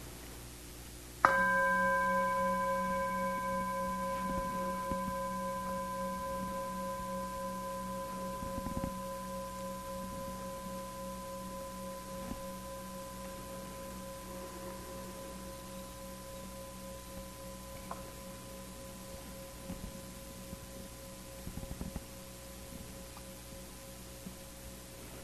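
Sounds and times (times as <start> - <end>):
meditation bell ringing: 1.2 - 25.1.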